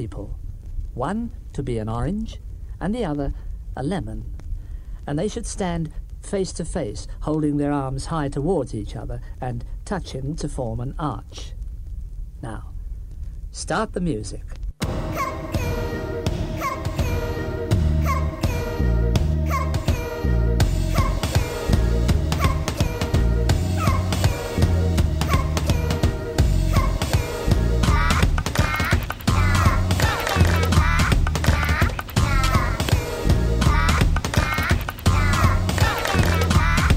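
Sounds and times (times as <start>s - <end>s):
speech: 0.0s - 0.4s, 1.0s - 4.4s, 5.0s - 11.6s, 12.4s - 12.7s, 13.5s - 14.6s
upbeat podcast theme song with bouncy bass line: 14.8s - 36.9s.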